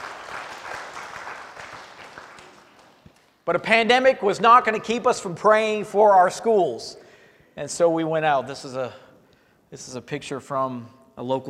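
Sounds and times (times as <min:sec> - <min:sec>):
crowd applause for educators: 0:00.0 - 0:03.3
speech: 0:03.5 - 0:07.0, 0:07.6 - 0:09.0, 0:09.7 - 0:11.4.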